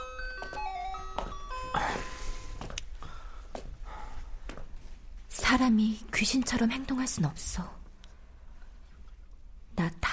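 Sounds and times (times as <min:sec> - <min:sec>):
school bell chime playing electronic tones: 0:00.0 - 0:02.6
speech: 0:05.5 - 0:07.8.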